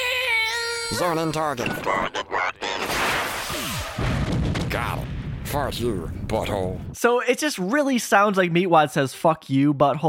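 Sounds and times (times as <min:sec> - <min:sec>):
speech: 0:00.9 - 0:02.5, 0:04.8 - 0:10.0
cartoon sound effects of missiles being fired and exploding: 0:02.8 - 0:07.0.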